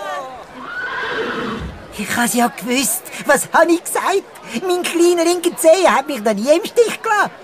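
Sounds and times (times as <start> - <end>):
racehorse whinnying after winning a race: 0.6 - 1.8
speech: 2.2 - 7.4.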